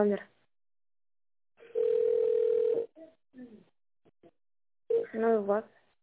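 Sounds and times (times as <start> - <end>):
speech: 0.0 - 0.3, 5.1 - 5.8
telephone tone on a call that fails to connect: 1.6 - 2.9.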